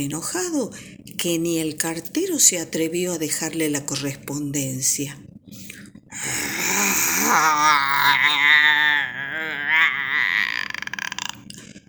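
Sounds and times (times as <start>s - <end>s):
speech: 0.0s - 6.4s, 7.3s - 8.9s
person imitating angry wild pig grunting: 6.2s - 11.6s.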